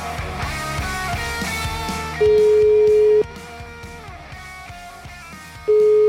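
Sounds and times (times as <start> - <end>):
music: 0.0 - 6.0
ringing tone of an outgoing telephone call: 2.2 - 3.2, 5.7 - 6.0.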